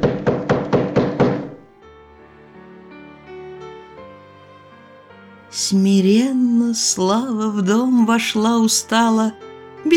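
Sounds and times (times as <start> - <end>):
firm knocking on a door: 0.0 - 1.6
soft instrumental music: 0.0 - 9.9
speech: 5.7 - 9.9.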